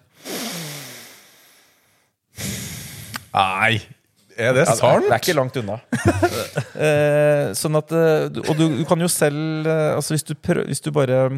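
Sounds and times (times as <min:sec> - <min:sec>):
heavy forceful nasal breathing at near-maximum heart rate: 0:00.0 - 0:03.3
speech: 0:03.4 - 0:11.3
laughter: 0:04.7 - 0:07.2, 0:08.4 - 0:09.2.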